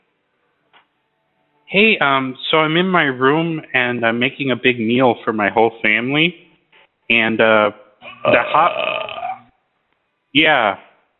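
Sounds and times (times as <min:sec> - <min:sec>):
speech: 0:01.7 - 0:06.4, 0:07.1 - 0:08.9, 0:10.3 - 0:10.8
person burping: 0:08.0 - 0:09.5.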